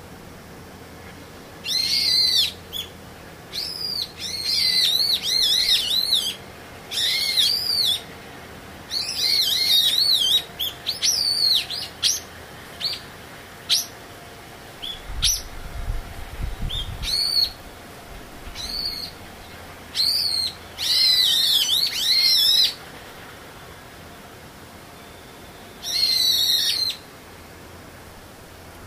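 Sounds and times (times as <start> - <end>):
bird singing bright rapid warbling phrases: 1.0 - 8.1, 8.9 - 14.0, 14.8 - 15.8, 16.4 - 17.6, 18.4 - 22.8, 25.1 - 27.1.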